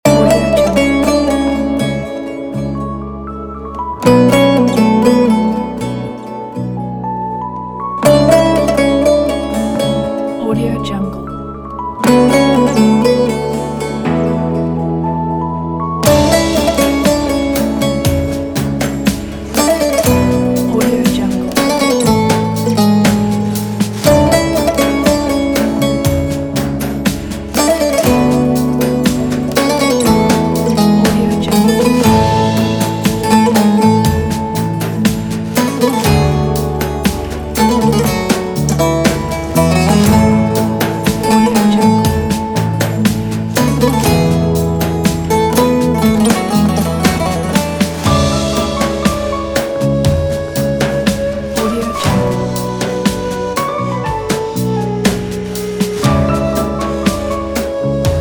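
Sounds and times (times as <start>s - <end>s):
modern Anatolian Turkish dramatic midtempo music: 0.0s - 58.1s.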